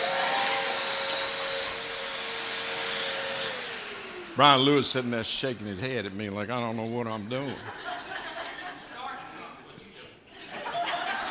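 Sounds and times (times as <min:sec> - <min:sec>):
vacuum cleaner running: 0:00.0 - 0:06.4
speech: 0:04.4 - 0:08.2
laughter: 0:07.3 - 0:11.3.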